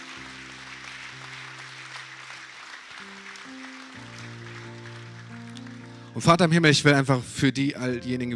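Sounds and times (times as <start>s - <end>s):
crowd at a worship service applauding: 0.0s - 6.6s
speech: 6.2s - 8.3s.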